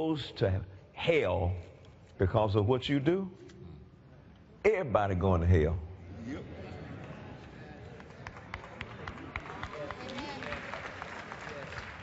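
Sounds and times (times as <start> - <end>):
speech: 0.0 - 3.5, 4.6 - 6.6
audience clapping: 7.8 - 12.0.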